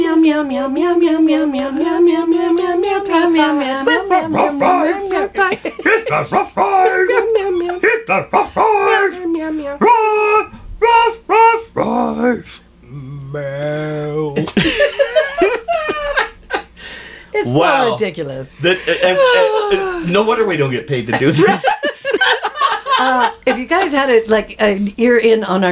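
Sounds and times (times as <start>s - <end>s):
person mimicking a dog with sharp yappy barks: 0.0s - 12.4s
person mimicking a dog with wavering howls: 0.0s - 14.4s
speech: 0.2s - 10.0s, 11.0s - 12.6s, 13.3s - 15.0s, 17.4s - 25.7s
person chuckling: 2.1s - 9.8s, 14.2s - 16.7s, 18.6s - 20.1s, 21.1s - 24.1s.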